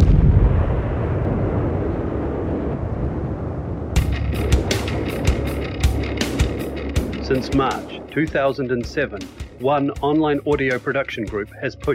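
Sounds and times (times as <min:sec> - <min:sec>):
sharp crackling blasts of artillery and gunfire: 0:00.0 - 0:02.8
deep continuous rumble of explosions: 0:00.0 - 0:11.0
speech: 0:07.3 - 0:11.9.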